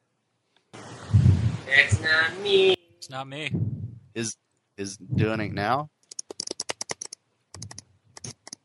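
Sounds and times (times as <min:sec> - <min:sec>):
speech: 0:01.7 - 0:05.9
computer keyboard typing: 0:06.1 - 0:08.6.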